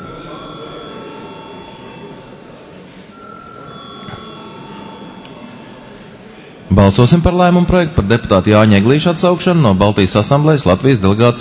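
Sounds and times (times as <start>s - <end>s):
parliament voting electric bell ringing in a large hall: 0.0s - 6.1s
murmur of the room: 0.0s - 11.3s
speech: 6.8s - 11.3s.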